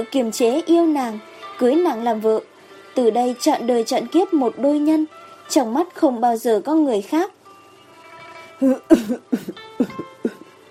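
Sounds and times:
speech: 0.0 - 7.4, 8.6 - 10.0
man coughing in short dry bursts: 8.6 - 10.5.

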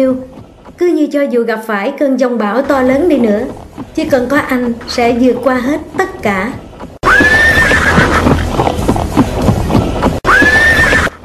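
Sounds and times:
busy clatter of horse hooves at a racecourse: 0.0 - 1.3, 2.6 - 11.2
speech: 0.0 - 6.6
horse neighing at a racecourse: 7.0 - 11.2.

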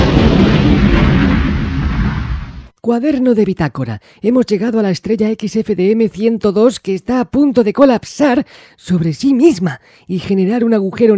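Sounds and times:
spaceship reactor exploding with a loud sustained roar: 0.0 - 2.7
speech: 2.9 - 11.1.

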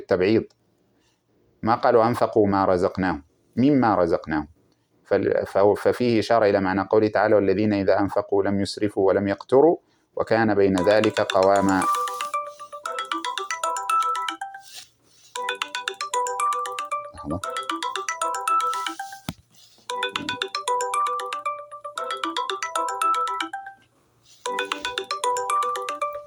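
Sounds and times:
speech: 0.1 - 0.6, 1.6 - 4.5, 5.1 - 12.0
melodic ringtone of an incoming phone call: 10.8 - 26.2.

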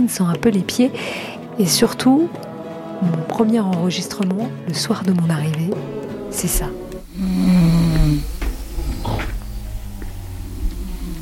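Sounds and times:
speech: 0.0 - 7.7
women snoring at night: 6.2 - 11.2.

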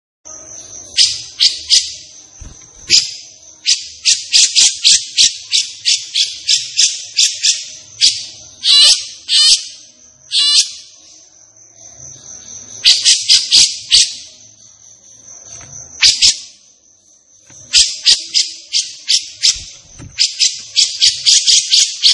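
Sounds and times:
thin high-pitched whine: 0.3 - 22.1
captive grey-cheeked bulbul chattering: 0.8 - 11.2, 12.8 - 14.6, 17.6 - 22.1.

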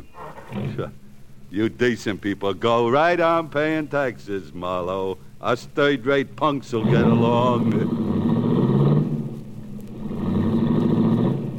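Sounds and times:
speech: 0.5 - 8.1
low continuous drone of traffic: 0.7 - 11.5
convertible car engine rumbling and revving as it pulls away: 6.7 - 11.5.

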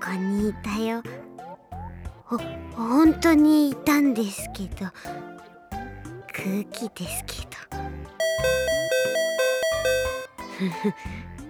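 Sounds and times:
speech: 0.1 - 1.2, 2.3 - 5.3, 6.4 - 8.6, 10.6 - 11.3
bright electronic doorbell ding-dong chime: 8.2 - 10.4.

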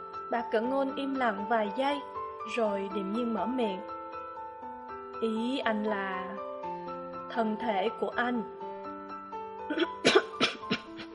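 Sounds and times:
speech: 0.3 - 4.0, 5.2 - 6.5, 7.3 - 8.6, 9.7 - 10.2
woman having a coughing fit: 9.7 - 11.1.

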